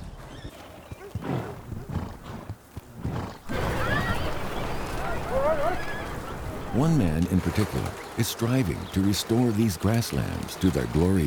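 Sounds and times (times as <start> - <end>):
horses whinnying and neighing outdoors: 0.0 - 11.2
speech: 6.8 - 11.2.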